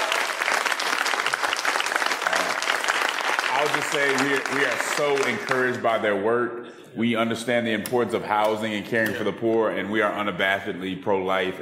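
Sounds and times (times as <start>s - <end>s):
audience applauding: 0.0s - 6.0s
speech: 3.6s - 11.5s.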